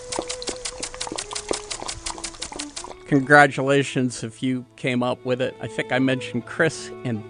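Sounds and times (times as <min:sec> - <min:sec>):
lawn sprinkler spraying water: 0:00.0 - 0:03.2
speech: 0:03.1 - 0:07.2.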